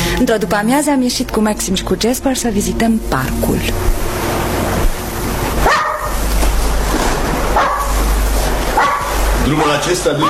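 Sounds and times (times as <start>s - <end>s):
steady rushing noise: 0.0s - 10.2s
speech: 0.2s - 4.2s, 9.5s - 10.2s
small dog barking: 5.6s - 6.2s, 7.5s - 8.0s, 8.7s - 10.2s.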